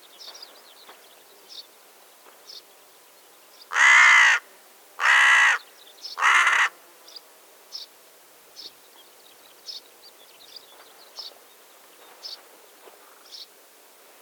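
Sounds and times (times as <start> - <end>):
small birds chirping: 0.0 - 3.8, 8.6 - 13.6
Carrion crow Corvus corone cawing: 3.7 - 5.6, 6.2 - 6.8.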